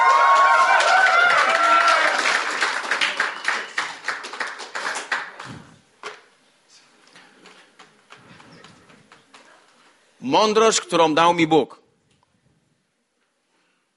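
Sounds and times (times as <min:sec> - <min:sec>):
voices cheering: 0:00.0 - 0:03.8
audience applause: 0:00.0 - 0:05.7
speech: 0:10.3 - 0:11.8.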